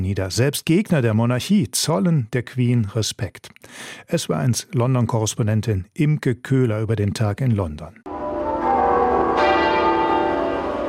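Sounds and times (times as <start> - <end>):
speech: 0.0 - 8.1
church bells tolling in the United Kingdom in remembrance: 8.1 - 10.8.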